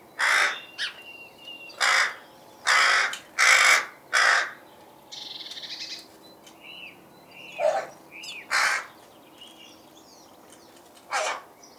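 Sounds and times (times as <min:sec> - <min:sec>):
rook cawing: 0:00.2 - 0:01.0, 0:01.8 - 0:04.6, 0:08.5 - 0:09.0.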